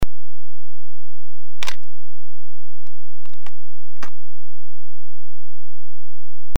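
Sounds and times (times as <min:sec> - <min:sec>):
SRT101 camera body shutter at 125: 0:01.6 - 0:01.8.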